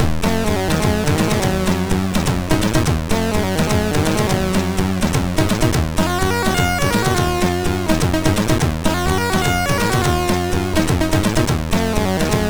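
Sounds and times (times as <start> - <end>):
chiptune sound chip synthesizer: 0.0 - 12.4.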